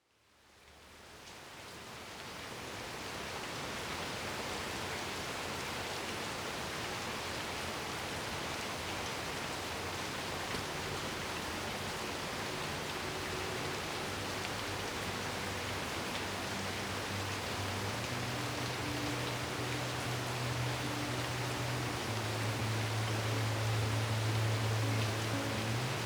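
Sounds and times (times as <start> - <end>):
rain: 0.0 - 26.0
gentle sleep melody: 10.6 - 26.0.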